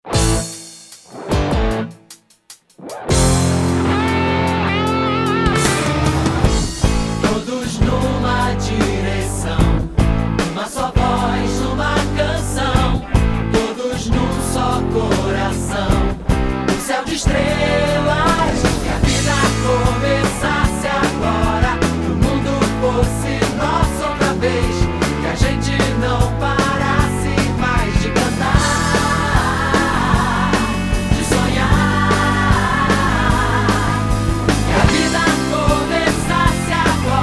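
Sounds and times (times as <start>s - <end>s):
rock jingle: 0.0s - 37.2s.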